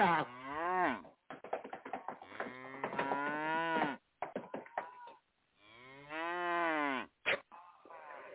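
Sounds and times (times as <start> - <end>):
cows mooing in a cow stable: 0.0 - 1.1, 2.2 - 4.0, 5.6 - 7.1.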